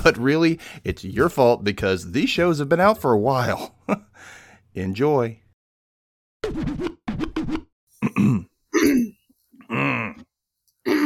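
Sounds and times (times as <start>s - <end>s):
speech: 0.0s - 5.4s, 6.4s - 7.0s
person choking and coughing: 8.0s - 10.2s.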